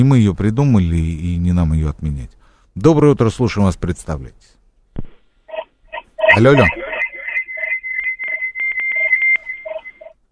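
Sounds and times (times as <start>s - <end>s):
speech: 0.0s - 5.1s, 6.4s - 6.8s
Morse code-like beeping over a phone line: 5.5s - 10.1s.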